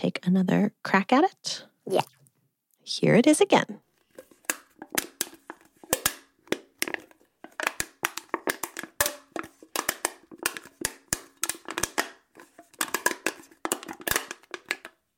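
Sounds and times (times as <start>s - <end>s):
speech: 0.0s - 2.2s, 2.9s - 3.8s
can being crinkled by hand: 4.4s - 15.0s.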